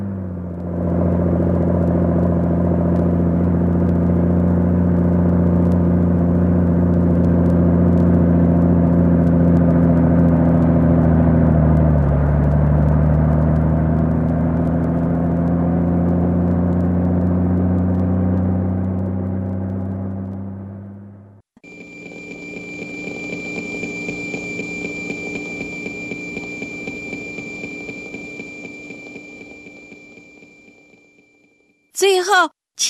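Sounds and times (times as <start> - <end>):
propeller plane motor sputtering and starting up: 0.0 - 31.3.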